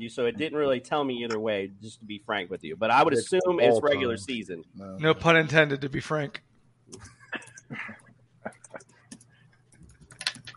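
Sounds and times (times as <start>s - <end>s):
speech: 0.0s - 8.0s
steady low electrical hum: 0.0s - 10.5s
computer keyboard typing: 8.5s - 10.5s.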